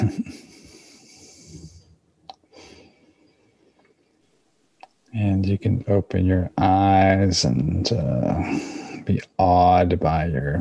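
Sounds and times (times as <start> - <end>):
slow deep breaths with eyes closed: 0.5 - 3.7, 8.4 - 9.1
speech: 5.2 - 10.5.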